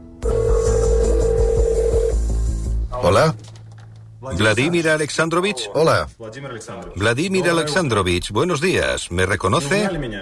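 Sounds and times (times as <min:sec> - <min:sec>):
electronic telephone tone of a call placed: 0:00.2 - 0:02.2
rhythmic low pulsing beat: 0:00.2 - 0:02.8
speech: 0:03.0 - 0:03.5, 0:04.2 - 0:10.2.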